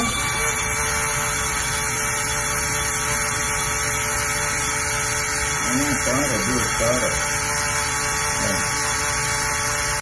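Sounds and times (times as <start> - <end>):
drone motors spinning with a motor problem: 0.0 - 10.0
speech: 6.1 - 7.4.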